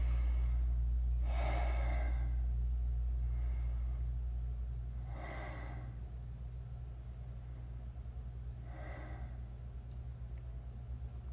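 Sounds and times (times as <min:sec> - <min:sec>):
deep heavy breaths: 0:00.0 - 0:02.5, 0:03.2 - 0:04.2, 0:05.0 - 0:06.1, 0:08.6 - 0:09.6
steady low hum: 0:00.0 - 0:11.3.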